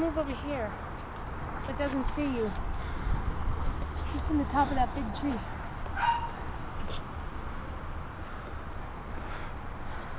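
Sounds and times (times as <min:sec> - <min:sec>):
speech: 0:00.0 - 0:00.9, 0:01.6 - 0:02.7, 0:04.1 - 0:06.4
steady low outdoor rumble: 0:00.0 - 0:10.1
dog barking faint short yips: 0:05.9 - 0:06.4.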